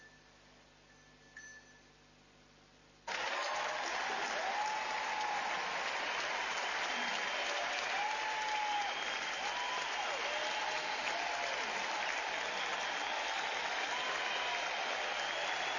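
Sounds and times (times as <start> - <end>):
large audience applauding: 3.1 - 15.7.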